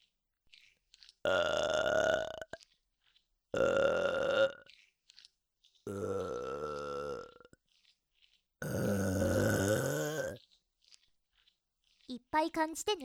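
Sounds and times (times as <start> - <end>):
person burping: 1.2 - 2.6, 3.5 - 4.7, 5.8 - 7.6, 8.6 - 10.4
speech: 12.5 - 13.0.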